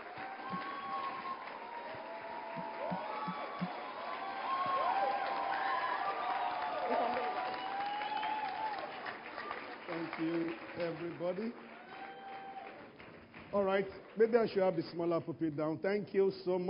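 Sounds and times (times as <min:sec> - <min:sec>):
scattered voices and cheers: 0:00.0 - 0:10.3, 0:11.8 - 0:12.8
large audience clapping: 0:00.0 - 0:15.7
speech: 0:10.9 - 0:11.7, 0:13.5 - 0:16.6.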